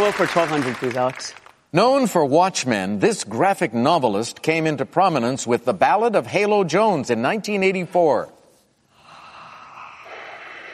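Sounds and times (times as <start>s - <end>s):
speech: 0.0s - 8.4s
heavy breathing: 8.9s - 10.7s.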